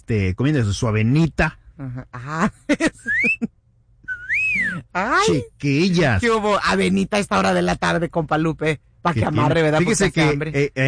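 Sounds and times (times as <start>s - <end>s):
speech: 0.1s - 3.5s, 4.6s - 10.8s
wolf whistle: 3.1s - 3.4s, 4.1s - 4.8s.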